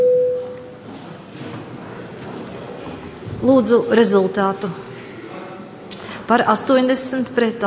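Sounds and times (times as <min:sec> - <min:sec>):
electronic parliamentary voting bell before a vote on a bill: 0:00.0 - 0:00.6
speech: 0:03.4 - 0:04.9, 0:06.3 - 0:07.6.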